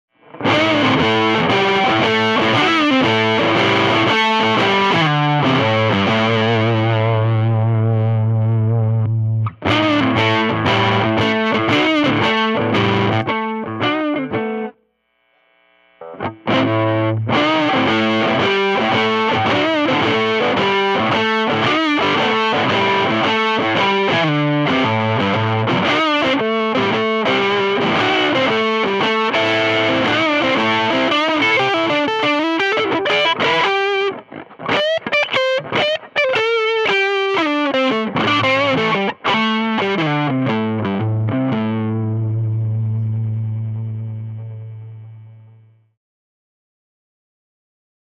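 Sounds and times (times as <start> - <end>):
blues through Trinity Tramp amps: 0.1 - 46.0.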